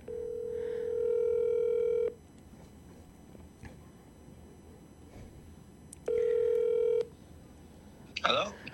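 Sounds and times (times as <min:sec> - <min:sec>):
telephone ringing tones on a radio call-in line: 0:00.0 - 0:02.2, 0:06.0 - 0:07.2.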